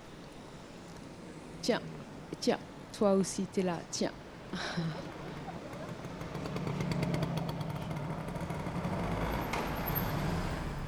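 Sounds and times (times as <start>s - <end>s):
faint street noise: 0.0s - 10.8s
speech: 1.6s - 5.2s
laughter: 3.2s - 7.2s
small scooter engine revving: 4.5s - 10.8s.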